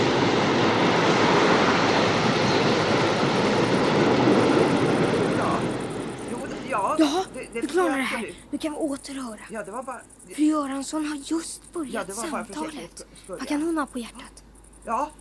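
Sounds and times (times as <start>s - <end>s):
heavy freight train rumbling past: 0.0s - 9.4s
speech: 7.6s - 15.1s.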